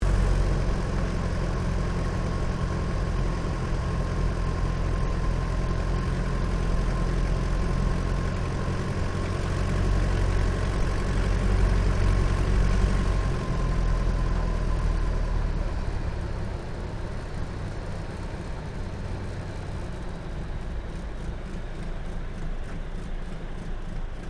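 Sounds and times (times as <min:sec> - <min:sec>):
de Havilland DH82A Tiger Moth engine during touch and go, interior: 0:00.0 - 0:24.2.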